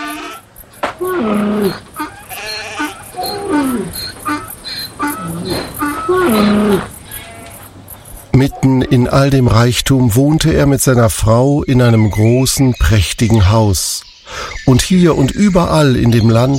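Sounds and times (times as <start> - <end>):
sheep and goats bleating: 0.0 - 0.6, 1.2 - 7.5
crickets or other insects chirping: 0.0 - 16.5
speech: 8.6 - 16.5.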